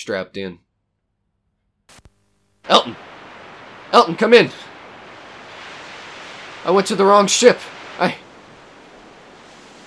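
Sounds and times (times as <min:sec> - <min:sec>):
speech: 0:00.0 - 0:00.6, 0:02.7 - 0:03.2, 0:03.9 - 0:04.7, 0:06.6 - 0:08.2
radio static: 0:01.9 - 0:05.5.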